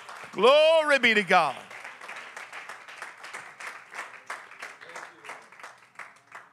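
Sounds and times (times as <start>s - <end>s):
crowd clapping hands in sustained applause: 0.0s - 6.5s
speech: 0.4s - 1.7s.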